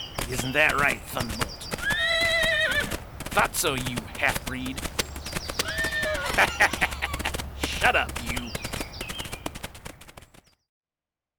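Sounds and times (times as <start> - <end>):
horse hooves clopping: 0.0 - 10.5
speech: 0.3 - 1.6, 3.4 - 4.9, 7.9 - 8.6
horse whinnying: 1.7 - 3.0, 5.6 - 7.4
laughter: 6.1 - 8.4.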